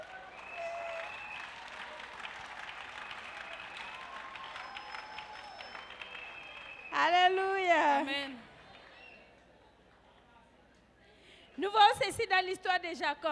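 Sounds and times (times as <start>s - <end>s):
congregation applause during a church sermon: 0.0s - 7.0s
speech: 7.0s - 8.4s, 11.6s - 13.3s.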